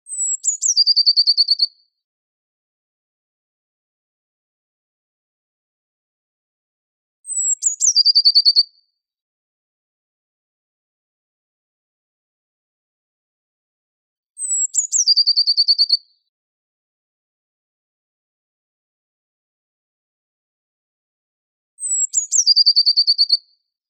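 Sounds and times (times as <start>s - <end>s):
great tit singing in the Netherlands: 0.1s - 1.7s, 7.3s - 8.6s, 14.4s - 16.0s, 21.8s - 23.4s.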